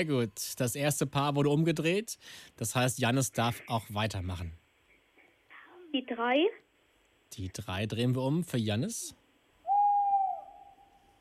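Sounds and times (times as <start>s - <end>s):
speech: 0.0s - 4.6s, 5.9s - 6.6s, 7.3s - 9.2s
tawny owl hooting: 9.6s - 11.1s.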